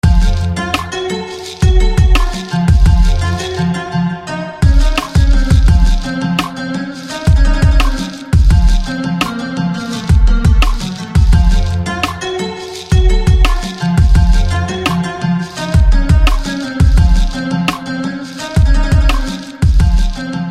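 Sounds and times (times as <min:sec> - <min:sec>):
sitar: 0:00.0 - 0:20.4.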